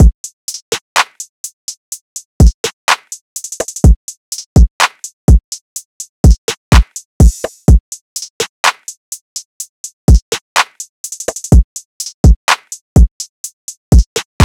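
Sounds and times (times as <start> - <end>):
trap drum loop: 0.0 - 1.3, 2.4 - 5.6, 6.2 - 9.0, 10.1 - 13.2, 13.9 - 14.4.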